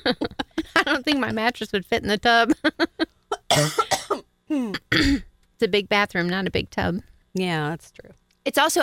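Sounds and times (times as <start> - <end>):
speech: 0.0 - 0.4, 1.1 - 3.8, 5.6 - 8.8
person coughing harshly: 3.3 - 5.3
voiced throat clearing: 3.4 - 5.3.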